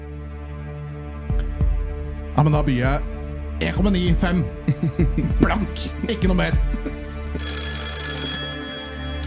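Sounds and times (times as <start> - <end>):
speech: 2.4 - 7.6
laughter: 4.4 - 7.8
telephone ringing: 7.4 - 9.2.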